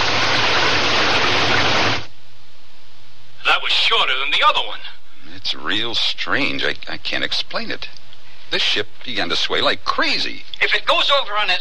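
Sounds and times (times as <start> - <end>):
heavy rain: 0.0 - 2.1
faint low hum: 2.1 - 11.5
speech: 3.7 - 11.5.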